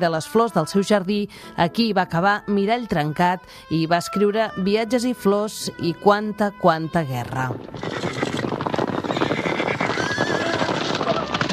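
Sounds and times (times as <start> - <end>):
speech: 0.0 - 8.2
many horses galloping: 7.4 - 11.5.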